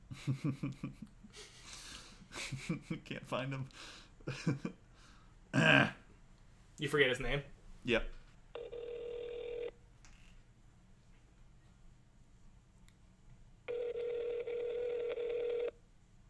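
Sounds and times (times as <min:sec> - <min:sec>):
speech: 0:00.2 - 0:01.6, 0:02.5 - 0:04.8, 0:05.5 - 0:06.0, 0:06.8 - 0:08.2
ringback tones of an outgoing phone call: 0:08.6 - 0:09.7, 0:13.7 - 0:15.8.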